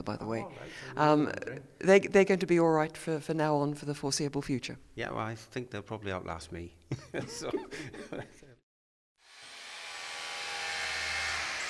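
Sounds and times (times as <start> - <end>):
speech: 0.0 - 8.4
laughter: 6.9 - 8.6
power drill boring into wood: 9.2 - 11.6.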